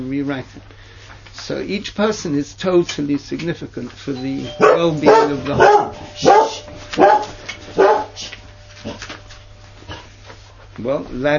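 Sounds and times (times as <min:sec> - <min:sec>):
speech: 0:00.0 - 0:07.3, 0:10.8 - 0:11.3
faint steady hum: 0:00.0 - 0:11.3
dog barking: 0:04.6 - 0:08.3.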